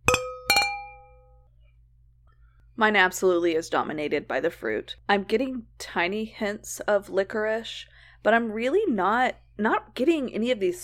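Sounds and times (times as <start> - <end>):
wine glasses clinking in a toast at a wine tasting: 0.0 - 1.2
speech: 2.8 - 10.8.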